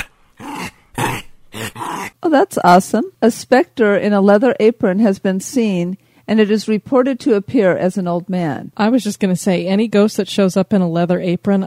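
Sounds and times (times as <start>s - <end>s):
dog growling and barking gruffly: 0.0s - 2.2s
speech: 2.3s - 11.6s.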